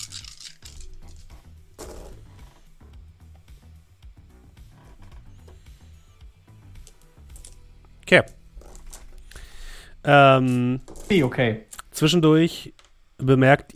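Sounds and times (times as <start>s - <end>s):
dice rolled by hand across a hard tabletop: 0.0s - 2.2s, 10.5s - 11.3s
speech: 8.1s - 8.4s, 10.1s - 13.7s.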